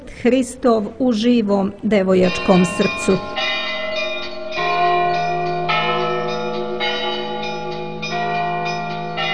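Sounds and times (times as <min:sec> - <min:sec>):
speech: 0:00.2 - 0:03.4
church bell ringing: 0:02.2 - 0:09.3.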